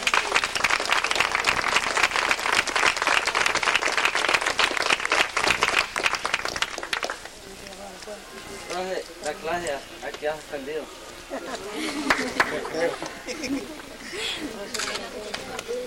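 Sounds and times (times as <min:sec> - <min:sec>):
audience applause: 0:00.0 - 0:07.4, 0:11.9 - 0:13.1
speech: 0:09.5 - 0:15.8
laughter: 0:11.2 - 0:14.9.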